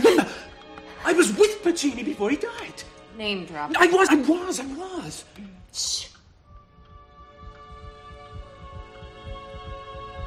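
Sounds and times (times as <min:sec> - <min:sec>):
speech: 0:01.1 - 0:06.1
double heartbeat from someone with two hearts thumping: 0:05.2 - 0:10.2
constant electronic hum: 0:05.4 - 0:10.2.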